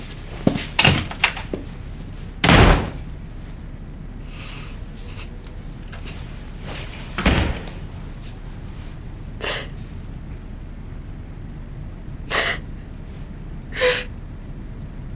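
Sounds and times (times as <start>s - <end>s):
door slamming shut: 0.5s - 1.6s, 2.4s - 3.1s, 6.8s - 7.9s
heavy thud: 2.4s - 3.1s, 6.1s - 8.4s.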